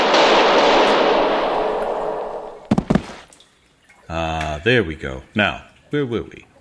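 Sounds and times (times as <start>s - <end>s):
gunshot echoing: 0.0s - 3.2s
sharp knocks: 0.0s - 3.3s
speech: 4.6s - 6.5s.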